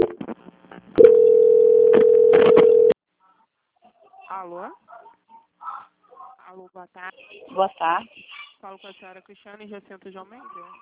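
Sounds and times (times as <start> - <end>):
telephone line clicks: 1.0 - 2.9
call transfer tone on a telephone line: 1.0 - 3.0
speech: 4.4 - 4.8, 6.6 - 10.8.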